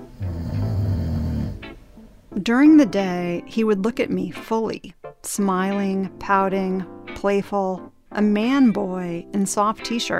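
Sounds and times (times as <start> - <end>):
man snoring: 0.0 - 1.7
speech: 2.4 - 10.1.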